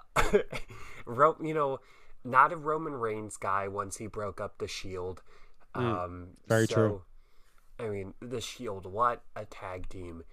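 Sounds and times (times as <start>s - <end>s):
harsh coughs with throat clearing: 0.0s - 0.7s
speech: 0.3s - 7.1s, 7.8s - 10.3s.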